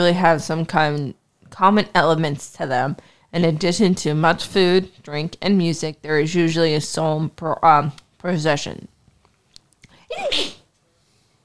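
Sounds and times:
speech: 0.0s - 8.9s
small breaths: 3.0s - 3.3s
sneeze: 10.0s - 10.7s.

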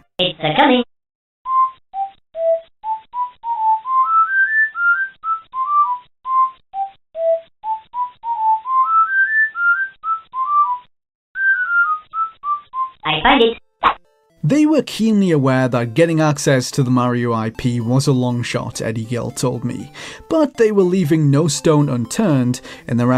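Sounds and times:
speech: 0.2s - 0.9s, 13.3s - 13.6s, 14.5s - 23.1s
whistled video game theme melody: 1.4s - 13.0s.

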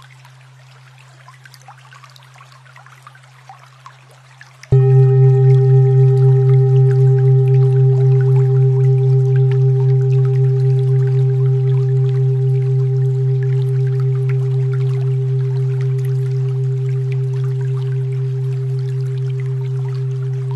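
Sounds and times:
steady low tone near 125.28 Hz: 4.7s - 20.5s.

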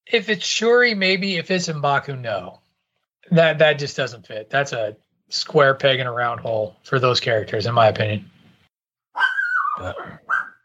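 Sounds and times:
speech: 0.1s - 2.6s, 3.2s - 8.3s, 9.8s - 10.3s
dog barking: 9.2s - 10.6s.

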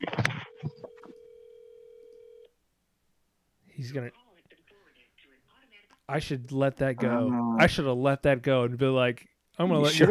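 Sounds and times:
ringback tone of an outgoing telephone call: 0.5s - 2.4s
speech: 3.8s - 4.2s, 6.1s - 10.0s
laughter: 9.8s - 10.0s.

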